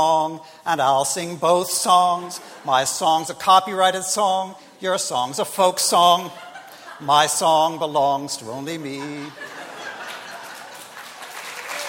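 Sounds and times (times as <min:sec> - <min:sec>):
speech: 0:00.0 - 0:09.6
laughter: 0:01.8 - 0:04.4, 0:05.9 - 0:11.8
audience clapping at a live song performance: 0:10.0 - 0:11.8.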